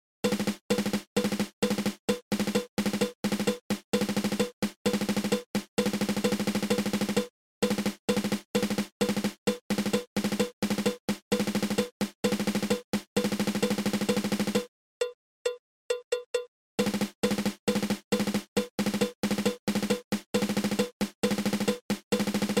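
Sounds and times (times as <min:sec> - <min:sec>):
drum triple stroke roll: 0:00.3 - 0:14.7, 0:16.8 - 0:22.5.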